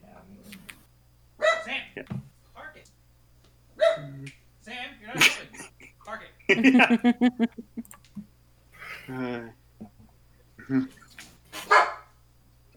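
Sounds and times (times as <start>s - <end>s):
dog barking in short sharp yaps: 1.4s - 1.9s, 3.8s - 4.2s, 11.6s - 12.1s
laughter: 5.1s - 8.0s
speech: 6.6s - 7.9s.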